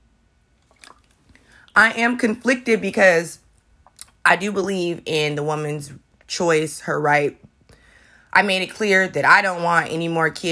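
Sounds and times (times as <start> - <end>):
sipping and swallowing water: 0.6 - 1.8
speech: 1.8 - 3.4, 4.2 - 7.5, 8.3 - 10.5.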